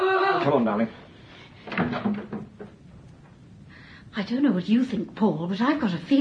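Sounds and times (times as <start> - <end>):
speech: 0.4 - 1.0, 1.7 - 2.6, 4.2 - 6.1
hotel room door creaking open: 1.6 - 2.8.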